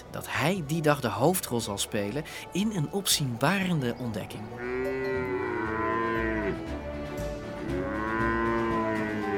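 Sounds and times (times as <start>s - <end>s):
speech: 0.1s - 5.0s
cattle herd mooing while driven through dry Wyoming wilderness: 4.6s - 6.9s, 7.6s - 9.3s.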